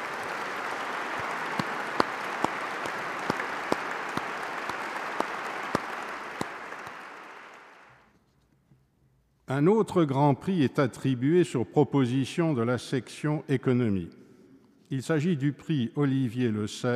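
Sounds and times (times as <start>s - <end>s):
large audience applause for prize laureates: 0.0s - 8.0s
speech: 9.5s - 14.2s, 14.9s - 16.9s.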